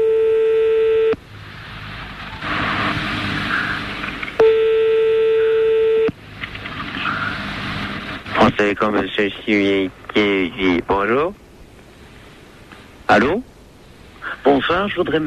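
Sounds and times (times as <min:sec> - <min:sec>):
telephone line tones as a call is placed to directory enquiries: 0:00.0 - 0:01.2, 0:04.4 - 0:06.2
hissing telephone line noise: 0:01.2 - 0:04.5, 0:06.1 - 0:15.2
speech: 0:08.6 - 0:11.4, 0:13.1 - 0:13.5, 0:14.4 - 0:15.2.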